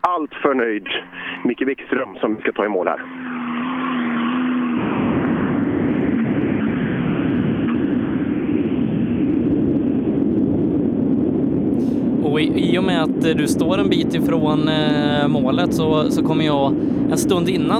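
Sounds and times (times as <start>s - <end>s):
speech: 0.2s - 3.3s, 12.4s - 17.7s
tuned four-wheel-drive rallycross car engine roaring while racing on the track: 0.8s - 1.6s, 2.6s - 11.4s.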